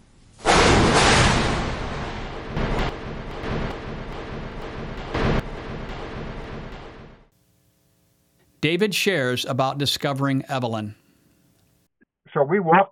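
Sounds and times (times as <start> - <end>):
thunder from a lightning strike cracking and rumbling: 0.4 - 7.3
speech: 8.6 - 11.0, 12.4 - 12.9.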